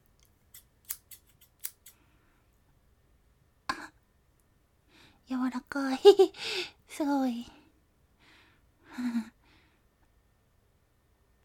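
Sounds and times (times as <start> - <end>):
scissors cutting konjac: 0.2 - 2.0
speech: 5.3 - 7.6.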